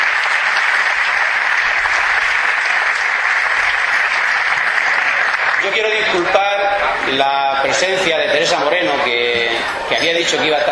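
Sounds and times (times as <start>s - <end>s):
sustained applause from a large audience: 0.0s - 7.8s
speech: 5.7s - 10.7s.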